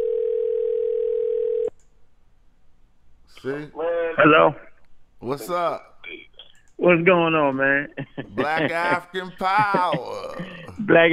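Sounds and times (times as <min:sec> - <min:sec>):
electronic phone ringing tone: 0:00.0 - 0:01.7
speech: 0:03.4 - 0:06.2, 0:06.8 - 0:11.1
laughter: 0:07.7 - 0:11.1.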